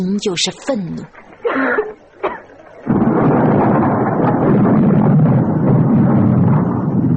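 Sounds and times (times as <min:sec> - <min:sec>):
speech: 0:00.0 - 0:01.8
stormy wind roaring: 0:01.1 - 0:07.1
child coughing harshly: 0:01.4 - 0:02.5.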